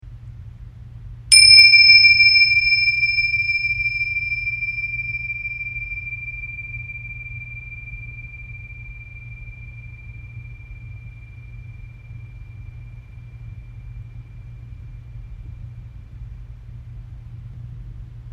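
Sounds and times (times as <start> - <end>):
bells: 1.3 - 12.8.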